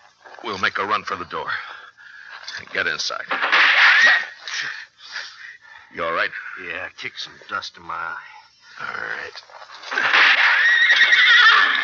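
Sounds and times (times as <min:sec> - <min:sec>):
speech: 0:00.4 - 0:01.7, 0:02.6 - 0:04.8, 0:06.0 - 0:10.1
horse whinnying after being hit: 0:09.9 - 0:11.8.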